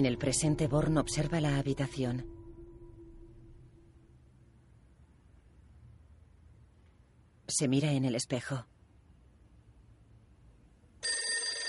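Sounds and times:
speech: 0.0s - 2.4s, 7.5s - 8.7s
telephone ringing in a room: 11.0s - 11.6s.

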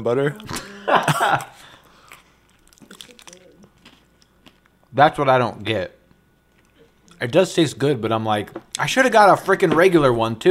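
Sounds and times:
speech: 0.0s - 1.8s, 4.9s - 6.0s, 7.2s - 10.4s
chewing a Reese's peanut butter candy: 1.3s - 4.9s.

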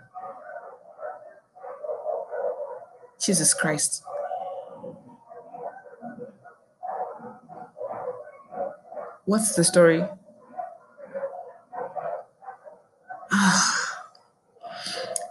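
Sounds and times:
dogs barking: 0.0s - 13.4s
speech: 3.2s - 4.1s, 9.3s - 10.2s.

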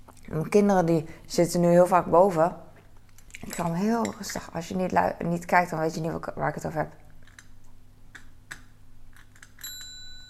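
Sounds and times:
speech: 0.4s - 2.6s, 3.5s - 7.0s
foot-operated bell tapped gently with soft bright dings: 9.7s - 10.2s.

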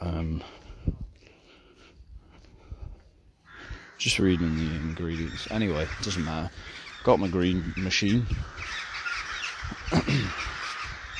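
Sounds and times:
flock of crows cawing: 3.4s - 11.1s
speech: 4.0s - 8.9s, 9.7s - 10.6s.

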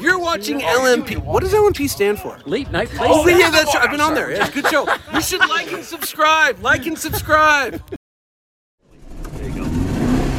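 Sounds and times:
speech: 0.3s - 8.0s
laughter: 2.8s - 8.0s
1963 356B car engine revving with a low rough rumble: 8.9s - 10.3s.

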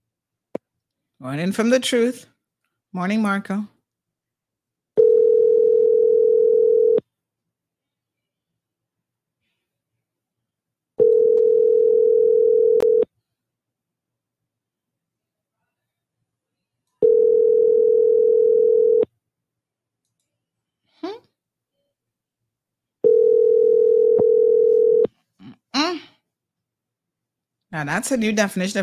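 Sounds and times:
speech: 1.2s - 2.3s, 2.9s - 3.7s, 27.8s - 28.8s
unanswered phone call ringback tone through the line: 5.0s - 7.0s, 11.0s - 13.1s, 17.0s - 19.1s, 23.0s - 25.1s.

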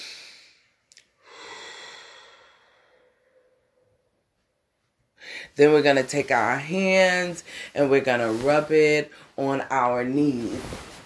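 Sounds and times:
deep breath during a meditation session with children: 0.0s - 4.2s, 5.2s - 5.6s
speech: 5.4s - 10.9s.

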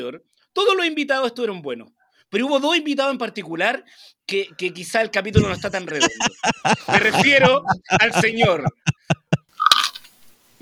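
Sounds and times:
speech: 0.0s - 9.2s
laughter: 5.4s - 9.5s
person biting into crunchy food: 9.5s - 10.2s.

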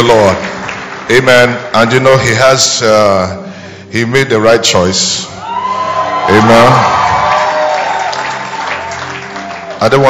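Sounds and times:
speech: 0.0s - 0.5s, 1.1s - 5.3s, 6.3s - 7.2s, 9.8s - 10.0s
large crowd clapping and cheering: 0.0s - 2.3s, 5.4s - 10.0s
shouts and whoops from a crowd: 5.4s - 9.8s.

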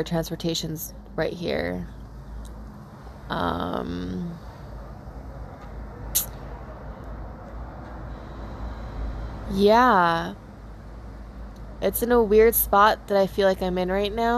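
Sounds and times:
speech: 0.0s - 2.0s, 3.3s - 4.5s, 9.5s - 10.4s, 11.8s - 14.3s
street traffic rumble above a train station: 0.0s - 14.3s
air brakes hissing: 7.9s - 9.6s.

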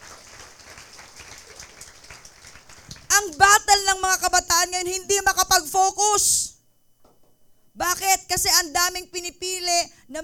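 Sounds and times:
crowd of young people clapping: 0.0s - 3.6s
speech: 3.4s - 6.5s, 8.4s - 10.2s.

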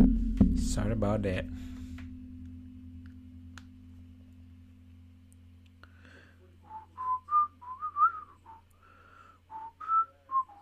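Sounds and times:
low hum: 0.0s - 10.6s
speech: 0.8s - 1.7s
person whistling a short melodic tune: 6.7s - 8.7s, 9.5s - 10.6s.

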